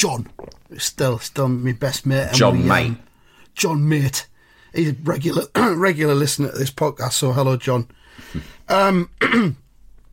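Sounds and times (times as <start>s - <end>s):
speech: 0.0s - 9.6s
person clearing throat: 8.4s - 9.6s.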